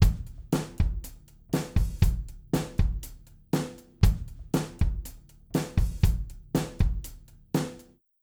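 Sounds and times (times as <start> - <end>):
bass drum recorded with subkick: 0.0 - 7.7.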